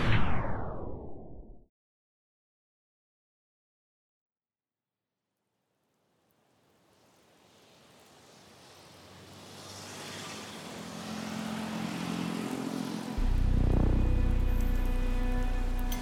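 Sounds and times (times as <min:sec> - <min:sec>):
low rumble: 0:00.0 - 0:01.6, 0:13.2 - 0:16.0
rain pattering on a hard surface at night: 0:05.8 - 0:11.0, 0:12.0 - 0:16.0.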